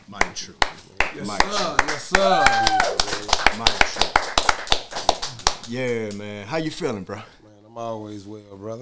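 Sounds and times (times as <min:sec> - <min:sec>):
rhythmic hand clapping: 0:00.0 - 0:06.3
speech: 0:00.1 - 0:03.7, 0:05.7 - 0:08.8.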